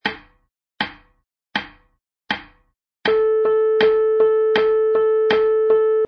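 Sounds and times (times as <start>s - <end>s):
MIDI piano playing eighth notes: 3.1s - 6.0s.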